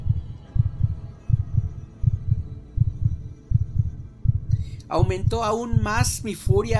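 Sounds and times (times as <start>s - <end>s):
muffled rapid heartbeat of an old man: 0.0s - 6.7s
speech: 4.9s - 6.7s.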